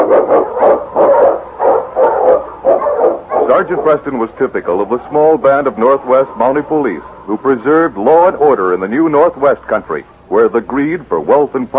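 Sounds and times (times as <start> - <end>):
husky barking: 0.0 - 4.0
speech: 3.6 - 11.7.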